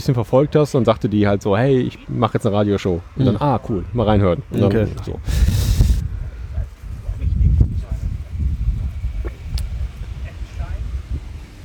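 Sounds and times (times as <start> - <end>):
speech: 0.0 - 5.6
strong wind outdoors after rain buffeting the microphone: 3.0 - 11.6.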